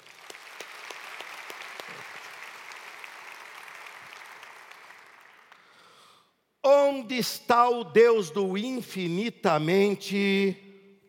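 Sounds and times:
audience applauding: 0.0s - 5.9s
speech: 6.9s - 10.6s.

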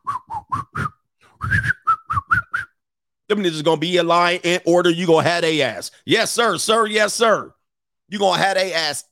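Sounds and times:
person whistling a short bouncy tune: 0.0s - 2.8s
speech: 3.3s - 9.1s.

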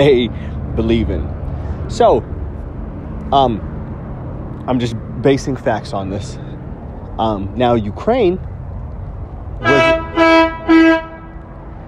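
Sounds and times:
speech: 0.0s - 2.4s, 3.3s - 3.7s, 4.7s - 6.5s, 7.2s - 8.5s
car horn honking: 9.6s - 11.5s.

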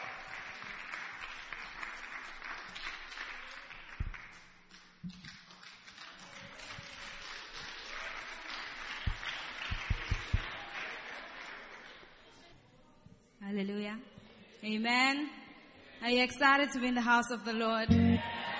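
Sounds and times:
audience clapping hands: 0.0s - 12.2s
speech: 13.6s - 15.4s, 16.0s - 18.4s.

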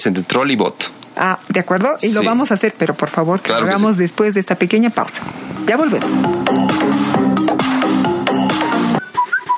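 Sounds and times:
speech: 0.0s - 7.7s
upbeat music: 5.5s - 9.4s.

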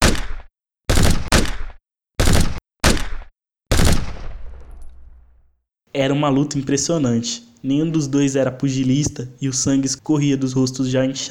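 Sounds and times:
gunshots: 0.0s - 5.4s
speech: 6.0s - 11.3s.

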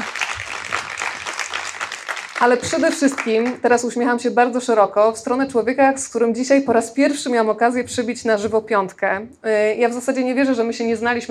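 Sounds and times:
live audience applauding: 0.0s - 3.6s
speech: 2.4s - 11.3s.

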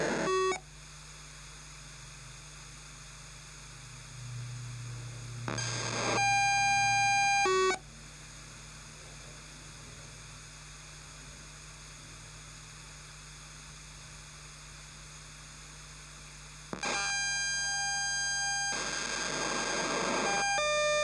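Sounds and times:
POCSAG paging transmission bursts of bright tones and static: 0.0s - 0.6s, 5.5s - 7.8s, 16.8s - 21.0s
soft hiss and low hum on an old multiband radio: 0.0s - 16.0s, 16.6s - 21.0s.

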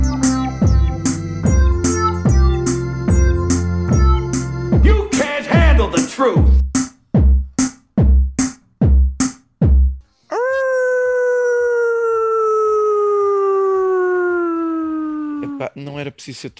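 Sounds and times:
loud short thumps: 0.0s - 10.0s
long steady howl: 10.3s - 15.6s
speech: 15.8s - 16.5s.

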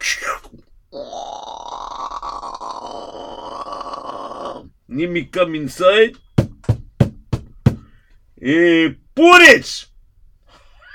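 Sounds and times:
voice imitating a big door creaking open: 0.0s - 4.8s
speech: 5.0s - 6.2s, 8.4s - 9.9s.

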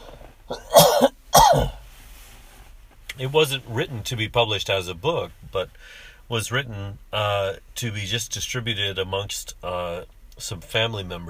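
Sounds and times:
person coughing: 0.5s - 1.8s
speech: 3.2s - 11.2s.

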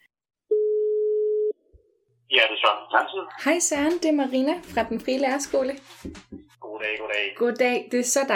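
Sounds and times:
steady telephone line tone: 0.5s - 1.6s
person talking over a crackly phone connection: 2.3s - 3.4s, 6.6s - 7.4s
speech: 2.6s - 8.3s.

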